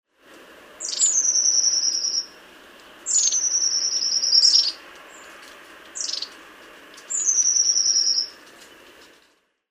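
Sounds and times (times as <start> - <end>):
long-tailed tit calling: 0.8 - 2.4, 3.0 - 6.4, 7.0 - 8.8.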